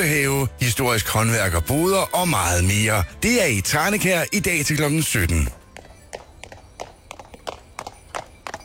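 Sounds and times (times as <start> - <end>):
speech: 0.0 - 5.6
horse hooves clip-clopping on a hard surface pulling a carriage: 4.0 - 8.6.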